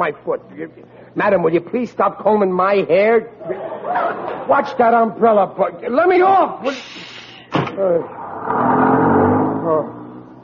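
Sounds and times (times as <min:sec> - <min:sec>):
speech: 0:00.0 - 0:07.0, 0:07.8 - 0:08.8
laughter: 0:03.4 - 0:04.9
sharp thump: 0:07.5 - 0:07.8
bus engine roaring as it pulls away: 0:08.0 - 0:10.4.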